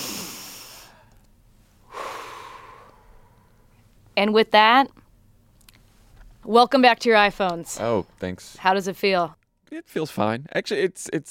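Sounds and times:
group of people breathing together during a mindfulness pause: 0:00.0 - 0:03.9
speech: 0:04.2 - 0:05.0, 0:06.5 - 0:11.2.

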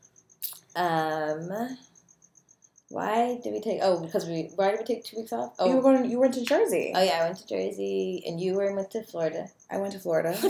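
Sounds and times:
crickets chirping in a backyard at night: 0:00.0 - 0:10.4
speech: 0:00.8 - 0:01.9, 0:02.9 - 0:10.4.

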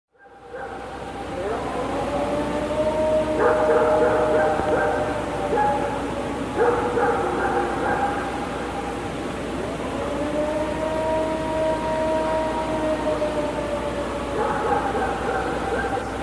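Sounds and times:
dog barking: 0:00.2 - 0:00.9, 0:03.4 - 0:06.0, 0:06.6 - 0:08.4, 0:14.4 - 0:16.2
long wavering howl: 0:00.2 - 0:16.2.

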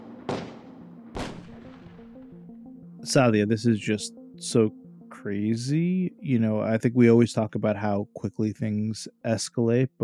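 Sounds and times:
gunshots: 0:00.0 - 0:02.2
speech: 0:03.0 - 0:10.0.

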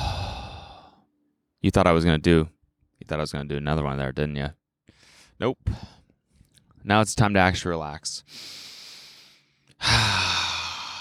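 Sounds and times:
deep breath out, long breathy exhale: 0:00.0 - 0:01.0, 0:08.4 - 0:11.0
speech: 0:01.6 - 0:04.6, 0:05.4 - 0:06.0, 0:06.8 - 0:08.7, 0:09.8 - 0:10.5.

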